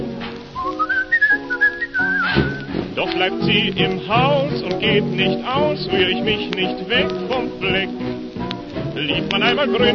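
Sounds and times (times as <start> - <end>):
sustained instrumental accompaniment: 0.0 - 9.9
person whistling a tune: 0.6 - 2.8
speech: 2.4 - 8.2, 9.0 - 9.9.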